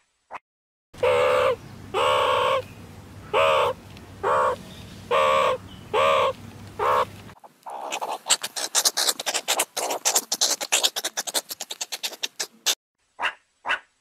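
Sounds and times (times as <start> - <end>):
meerkat short nasal harmonic yelps: 1.0 - 2.6, 3.3 - 7.1, 7.7 - 13.9.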